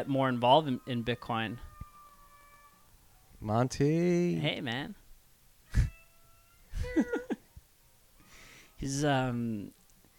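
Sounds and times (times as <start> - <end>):
speech: 0.0 - 1.7, 3.4 - 5.0, 6.9 - 7.2, 8.8 - 9.8
male cat meowing: 1.6 - 2.8, 5.7 - 6.7.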